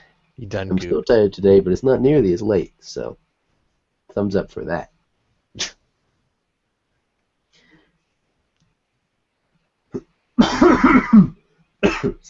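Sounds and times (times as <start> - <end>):
speech: 0.4 - 3.2, 4.1 - 4.9, 5.6 - 5.8, 9.9 - 12.2
person clearing throat: 10.4 - 12.2
person coughing: 10.4 - 12.2.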